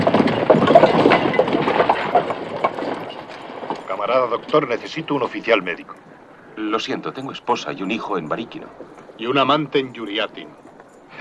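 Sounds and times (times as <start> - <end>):
dense rumbling outdoor noise: 0.0 - 11.2
horse hooves clip-clopping in a forest beside a road: 0.0 - 11.2
speech: 4.4 - 11.2.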